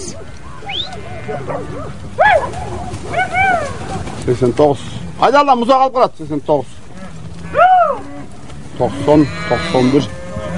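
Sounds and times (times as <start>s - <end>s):
cows mooing in a valley among mountains: 0.0s - 2.0s, 6.8s - 10.5s
speech: 1.3s - 6.8s, 8.8s - 10.2s.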